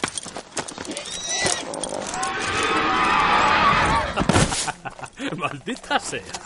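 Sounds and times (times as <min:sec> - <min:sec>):
untamed horse whinnying shrilly while throwing off its rider: 0:00.8 - 0:04.3
laughter: 0:04.0 - 0:06.4
speech: 0:05.3 - 0:06.4.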